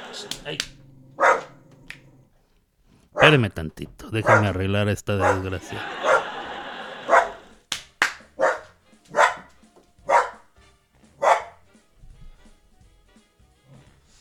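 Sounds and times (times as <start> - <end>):
laughter: 0.0 - 0.6, 3.2 - 7.7
dog barking: 0.0 - 2.2, 3.2 - 3.4, 4.2 - 4.6, 5.2 - 7.5, 8.4 - 10.5, 11.2 - 11.7
speech: 0.2 - 0.8, 3.2 - 6.1.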